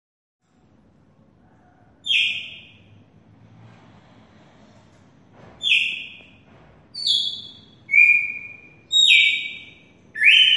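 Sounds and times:
female Red-cowled cardinal singing ringing whistled notes: 0:05.6 - 0:06.2, 0:07.0 - 0:10.5.

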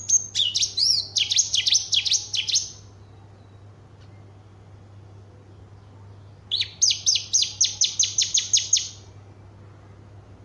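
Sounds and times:
Horsfield's bush lark singing: 0:00.0 - 0:03.7, 0:06.5 - 0:09.0.

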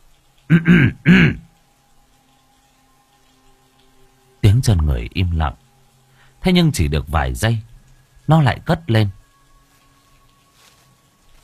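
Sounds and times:
speech: 0:00.5 - 0:01.4, 0:04.9 - 0:05.6, 0:06.4 - 0:07.7, 0:08.3 - 0:09.2
man clearing his throat: 0:00.5 - 0:01.5.

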